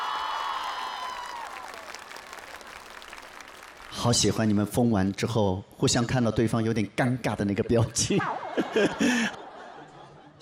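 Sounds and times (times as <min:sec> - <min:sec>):
audience applause for dancers: 0:00.0 - 0:04.2
speech: 0:03.9 - 0:09.4
laughter: 0:07.8 - 0:10.3.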